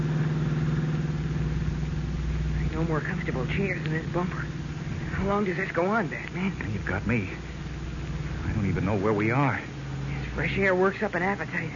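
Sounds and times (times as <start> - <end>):
car engine humming rolling down a steep hill on a narrow country road at night: 0.0 - 11.7
speech: 2.8 - 4.6, 5.2 - 7.5, 8.6 - 9.7, 10.4 - 11.7.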